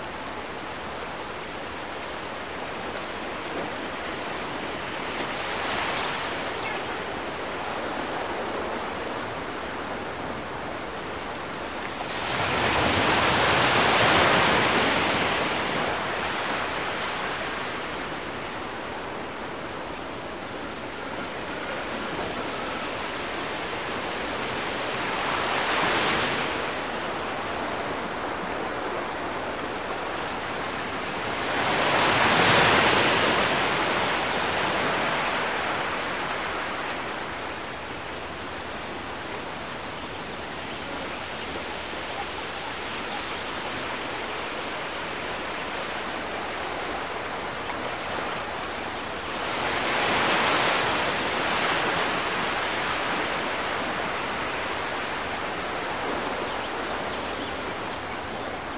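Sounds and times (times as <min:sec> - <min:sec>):
beach ambience: 0:00.0 - 0:58.7.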